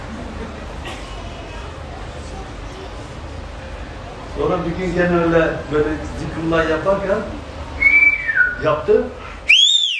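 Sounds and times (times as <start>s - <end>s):
speech: 4.4s - 7.4s, 8.6s - 9.2s
person whistling: 7.8s - 8.6s, 9.5s - 9.9s.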